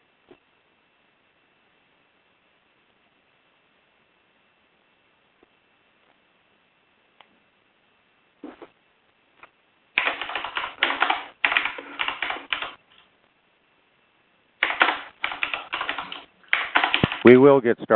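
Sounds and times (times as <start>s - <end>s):
computer keyboard typing with clicky keystrokes: 10.0s - 13.1s, 14.6s - 17.4s
speech: 17.3s - 17.9s.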